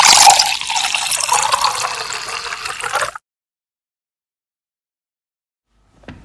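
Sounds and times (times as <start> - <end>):
water running from a tap: 0.0 - 3.2.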